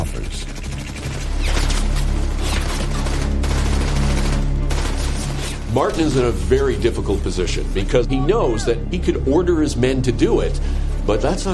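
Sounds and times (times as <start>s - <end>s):
enemy machine gun firing in a wartime battle: 0.1s - 6.4s
speech: 5.8s - 11.5s.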